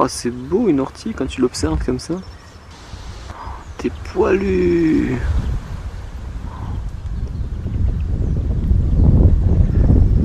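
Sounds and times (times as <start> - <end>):
speech: 0.0 - 2.4, 3.8 - 5.6
wind buffeting the microphone outdoors: 0.0 - 10.2.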